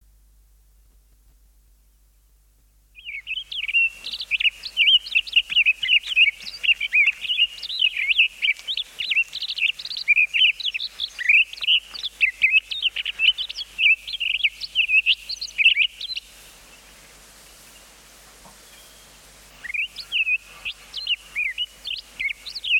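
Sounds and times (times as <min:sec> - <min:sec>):
songbirds singing: 0:02.7 - 0:22.7
Townsend's solitaire singing: 0:03.0 - 0:16.4, 0:18.7 - 0:22.7.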